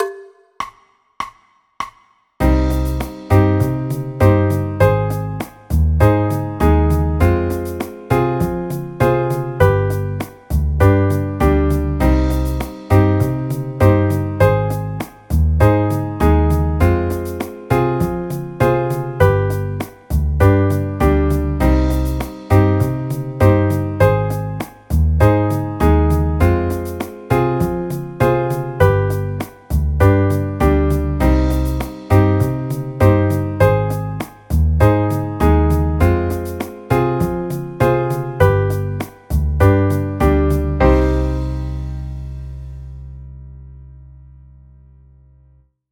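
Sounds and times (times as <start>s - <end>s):
C minor chord progression: 2.4s - 44.6s.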